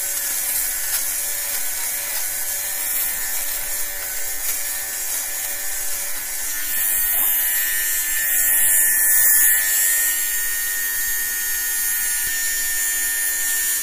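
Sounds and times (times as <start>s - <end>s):
small electric fabric shaver running on cloth: 0.0s - 13.8s.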